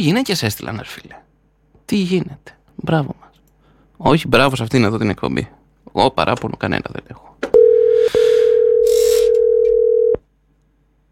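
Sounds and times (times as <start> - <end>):
speech: 0.0 - 1.2, 1.9 - 3.2, 4.0 - 7.4
telephone line tone while placing call: 7.6 - 10.2.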